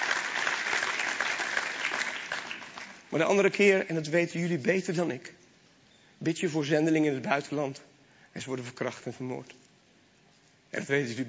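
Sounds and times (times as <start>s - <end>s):
audience applause: 0.0s - 3.1s
speech: 3.1s - 5.4s, 6.2s - 9.6s, 10.7s - 11.2s.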